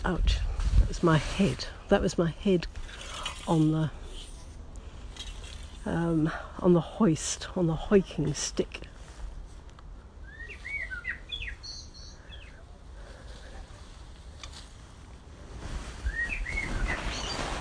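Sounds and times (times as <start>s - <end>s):
speech: 0.0s - 4.0s, 5.8s - 8.9s
blackbird singing fluty warbling phrases: 10.2s - 12.6s, 16.1s - 17.5s.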